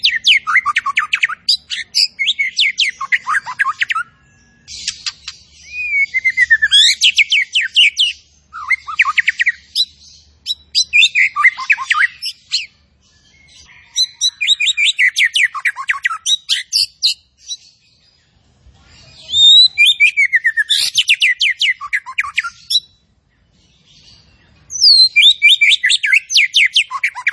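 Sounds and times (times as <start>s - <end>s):
zebra finch song: 0.0s - 27.3s.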